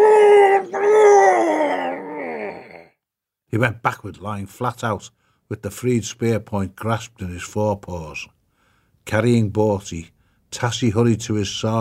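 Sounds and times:
big mole roaring in pain heaving a spear point out: 0.0 - 3.0
speech: 3.5 - 8.4, 9.0 - 11.7.

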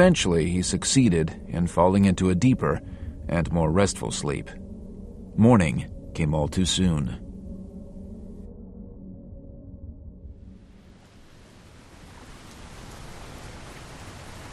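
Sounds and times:
speech: 0.0 - 4.6, 5.4 - 7.2
low rumbling tone: 1.3 - 12.1
steady drizzling rain: 10.5 - 14.5.

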